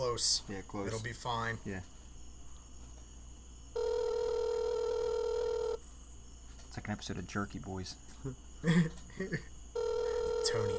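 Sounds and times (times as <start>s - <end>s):
quiet hiss: 0.0s - 10.7s
speech: 0.1s - 2.0s, 6.8s - 9.6s, 10.4s - 10.7s
buzzy phone ringback tone over a speakerphone: 3.8s - 5.8s, 9.8s - 10.7s.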